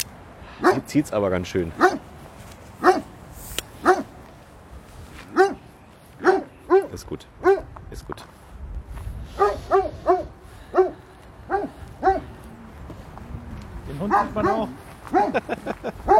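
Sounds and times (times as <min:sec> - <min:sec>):
speech: 0:00.8 - 0:02.0, 0:07.1 - 0:07.5, 0:14.4 - 0:15.7
dog yipping and barking: 0:01.8 - 0:02.0, 0:02.8 - 0:03.1, 0:03.8 - 0:04.1, 0:05.3 - 0:05.6, 0:06.2 - 0:07.7, 0:09.4 - 0:12.3, 0:14.1 - 0:15.4
laughter: 0:15.1 - 0:16.1.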